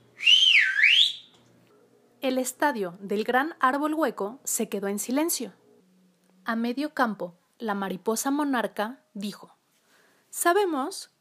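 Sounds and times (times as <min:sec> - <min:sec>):
referee whistle blown hard: 0:00.2 - 0:01.3
speech: 0:02.3 - 0:05.6, 0:06.5 - 0:09.6, 0:10.3 - 0:11.1.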